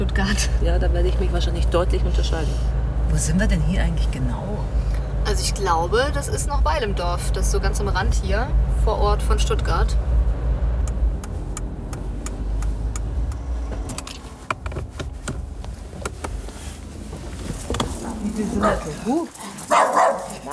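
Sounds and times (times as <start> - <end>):
speech: 0.0 - 10.2, 18.4 - 19.8
low engine rumble: 0.0 - 20.5
scattered clicks: 10.8 - 15.4
dog barking in front of a terraced house on the edge of Stuttgart: 18.5 - 20.5.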